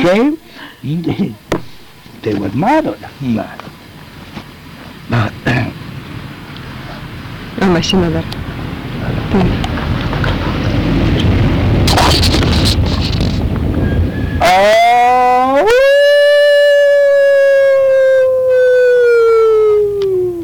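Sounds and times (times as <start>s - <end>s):
speech: 0.0s - 1.6s, 2.2s - 3.8s, 5.1s - 5.6s, 7.6s - 10.0s, 14.5s - 15.9s
rumbling wind-like noise: 0.0s - 20.4s
wolf howling in winter: 14.4s - 20.4s.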